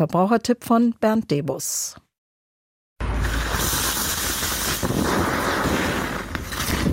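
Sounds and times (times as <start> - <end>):
speech: 0.0 - 2.0
lithium-ion battery catching fire, hissing and roaring: 3.1 - 6.8.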